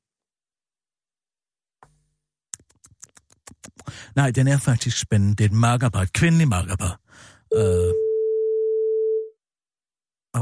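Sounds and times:
speech: 4.0 - 8.0
telephone busy signal tone: 7.5 - 9.3.

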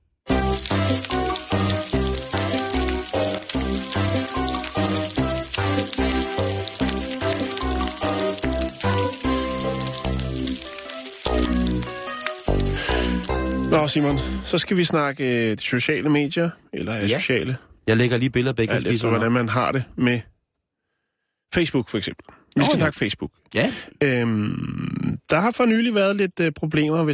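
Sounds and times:
thick fatty bacon sizzling in a frying pan: 0.3 - 14.4
speech: 13.9 - 20.3, 21.5 - 27.1.

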